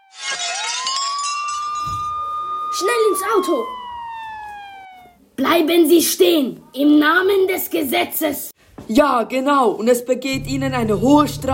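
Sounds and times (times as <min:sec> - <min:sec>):
window pane glass breaking in a house: 0:00.0 - 0:02.2
speech: 0:02.8 - 0:03.8, 0:05.4 - 0:11.5.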